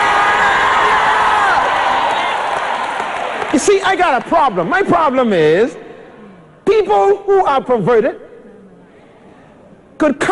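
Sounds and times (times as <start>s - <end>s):
church audience cheering and shouting: 0.0s - 3.8s
speech: 3.9s - 5.8s, 6.7s - 8.3s, 10.0s - 10.3s.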